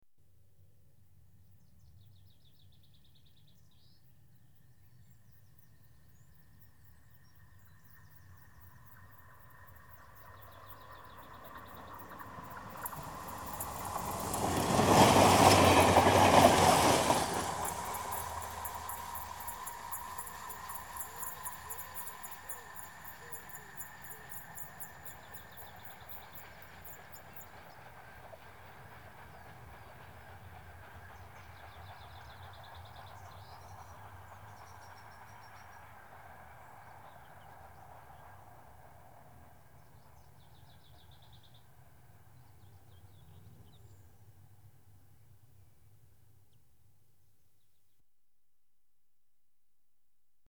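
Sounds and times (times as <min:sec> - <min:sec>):
single diesel train passing: 0:09.0 - 0:40.4.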